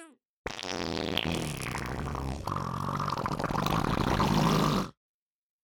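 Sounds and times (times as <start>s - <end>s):
farts: 0.5s - 4.9s.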